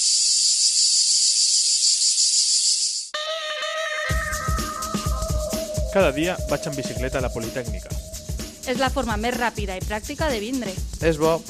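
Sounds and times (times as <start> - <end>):
cicada droning with a dense shrill buzz: 0.0 - 11.0
music: 3.7 - 11.4
speech: 6.0 - 11.4.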